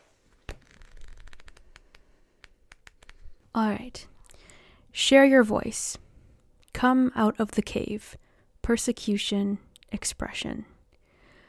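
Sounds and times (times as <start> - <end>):
card guidebook pages being flipped through: 0.0 - 3.4
speech: 3.6 - 4.1, 5.0 - 6.0, 6.8 - 10.7.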